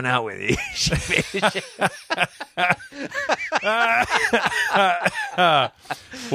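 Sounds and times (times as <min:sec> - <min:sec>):
speech: 0:00.0 - 0:06.3
breathy laughter: 0:00.5 - 0:06.3
person coughing: 0:04.0 - 0:05.7.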